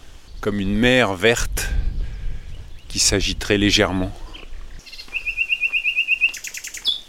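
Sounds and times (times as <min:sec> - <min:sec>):
birds chirping outdoors in trills and tweets: 0:00.0 - 0:07.0
soft breezy background: 0:00.0 - 0:07.0
speech: 0:00.4 - 0:01.8, 0:02.9 - 0:04.2.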